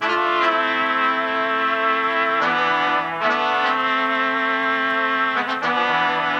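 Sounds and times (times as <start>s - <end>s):
brass melody loop in A minor: 0.0s - 6.3s.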